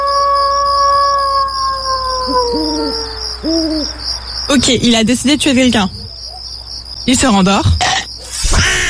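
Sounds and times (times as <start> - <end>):
owl hooting: 0.0 - 4.0
wolf howling: 0.0 - 4.0
crickets chirping: 0.0 - 8.8
speech: 2.3 - 6.0, 7.1 - 7.8.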